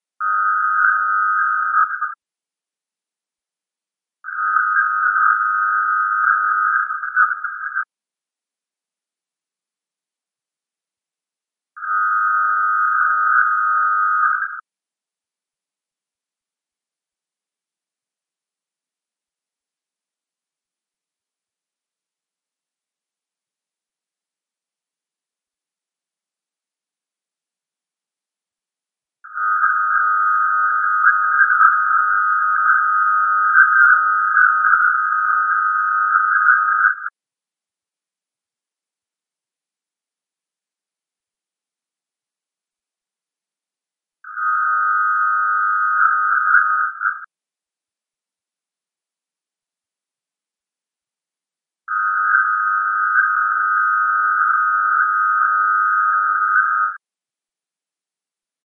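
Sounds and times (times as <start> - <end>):
signal sounds: 0.2 - 2.2, 4.3 - 7.9, 11.8 - 14.6, 29.3 - 37.1, 44.3 - 47.3, 51.9 - 57.0.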